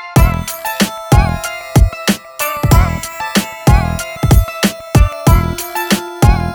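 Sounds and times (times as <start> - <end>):
hip hop music in E minor: 0.2 - 6.5.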